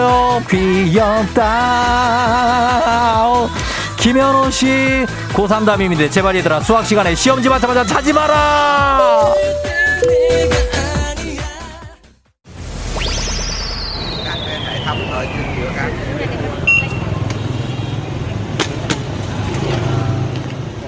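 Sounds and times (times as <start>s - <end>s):
speech: 0.4s - 9.7s
brief musical jingle: 9.0s - 11.1s
long falling whistle-like tone: 12.8s - 16.2s
steady street traffic rumble: 13.9s - 20.8s
passing motorbikes: 14.2s - 20.8s.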